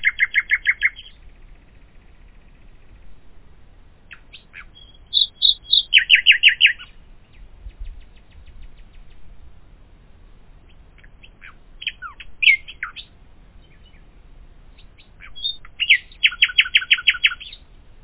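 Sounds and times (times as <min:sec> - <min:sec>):
common nightingale singing: 0:00.0 - 0:03.2, 0:04.0 - 0:09.4, 0:10.6 - 0:17.8.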